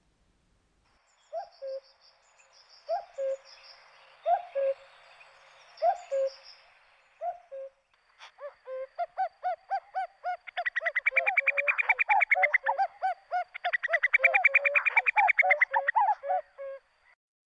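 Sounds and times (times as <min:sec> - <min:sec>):
higher bird chirps: 0:01.1 - 0:17.2
common cuckoo calling: 0:01.3 - 0:01.9, 0:02.8 - 0:03.6, 0:04.2 - 0:04.9, 0:05.8 - 0:06.5, 0:07.2 - 0:17.2.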